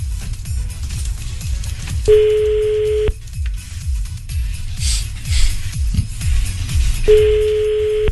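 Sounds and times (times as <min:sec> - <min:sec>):
low rhythmic rumble: 0:00.0 - 0:08.1
phone line ringback tone: 0:02.1 - 0:03.2, 0:07.1 - 0:08.1.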